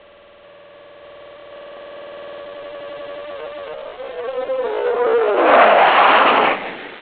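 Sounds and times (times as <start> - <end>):
fly by whoosh: 4.2 - 7.0.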